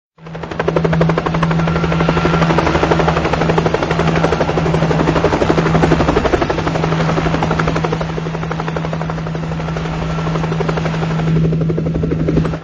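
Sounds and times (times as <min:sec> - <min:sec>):
3D helicopter: 0:00.2 - 0:12.6.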